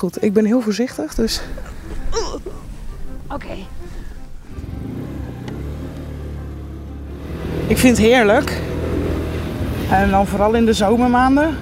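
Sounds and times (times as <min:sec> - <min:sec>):
speech: 0:00.0 - 0:02.5, 0:03.3 - 0:03.8, 0:07.7 - 0:08.7, 0:09.9 - 0:11.6
scooter engine starting, revving and driving off: 0:02.6 - 0:11.6.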